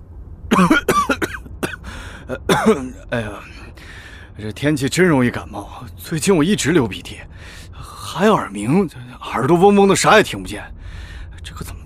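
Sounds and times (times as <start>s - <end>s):
voice imitating a taxi driver's staged theatrical coughs: 0.5s - 3.1s
speech: 0.6s - 1.3s, 2.6s - 3.6s, 4.4s - 11.8s.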